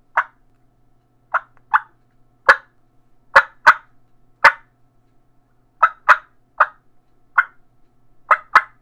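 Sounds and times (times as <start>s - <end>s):
Batwing IV turkey clucks: 0.1s - 0.4s, 1.3s - 2.7s, 3.3s - 4.7s, 5.8s - 6.8s, 7.4s - 7.6s, 8.3s - 8.8s.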